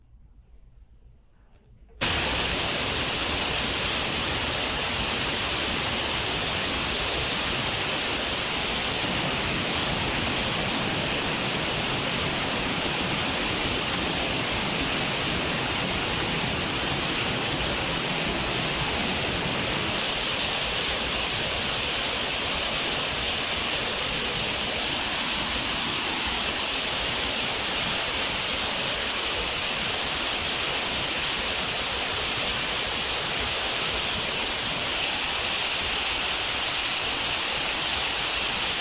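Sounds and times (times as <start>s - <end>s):
rushing river floodwater at flood stage: 2.0s - 38.7s.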